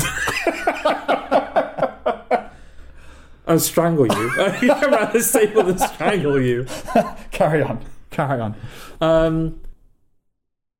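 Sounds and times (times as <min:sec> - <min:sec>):
laughter: 0:00.0 - 0:02.6, 0:04.1 - 0:07.8
speech: 0:03.5 - 0:09.6
person coughing in short breathy bursts: 0:04.0 - 0:04.4.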